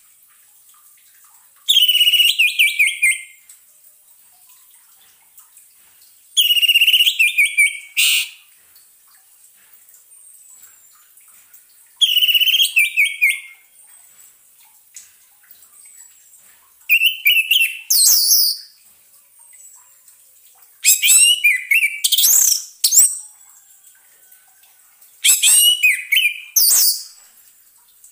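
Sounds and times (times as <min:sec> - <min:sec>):
orange-headed thrush song of whistled and chirping notes: 0:01.7 - 0:03.4, 0:06.4 - 0:08.4, 0:12.0 - 0:13.6, 0:16.9 - 0:18.7, 0:20.8 - 0:23.2, 0:25.2 - 0:27.2.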